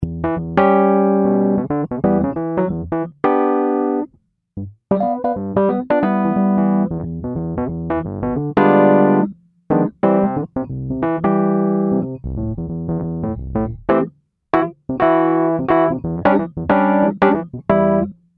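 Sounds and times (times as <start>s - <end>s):
Electric MK1 electric piano: 0.0s - 4.1s, 4.9s - 18.2s.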